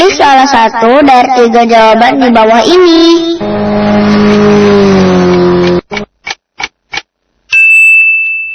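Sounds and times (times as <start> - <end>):
speech: 0.2 - 6.0
steady high tone: 2.3 - 5.8, 7.5 - 8.5
motorcycle engine revving with throttle blips: 3.4 - 6.1.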